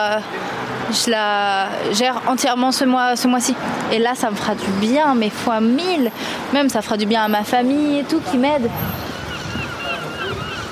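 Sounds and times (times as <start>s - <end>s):
speech: 0.0s - 9.0s
wind: 0.0s - 10.6s
seagulls calling: 7.4s - 10.6s.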